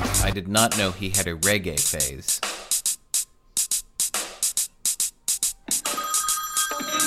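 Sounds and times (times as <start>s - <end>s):
speech: 0.2s - 2.8s
telephone ringtone for an incoming call: 5.7s - 7.0s.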